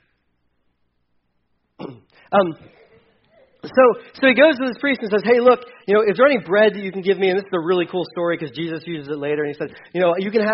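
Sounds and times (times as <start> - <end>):
man clearing his throat: 1.8 - 4.0
speech: 2.3 - 2.8, 3.6 - 10.5.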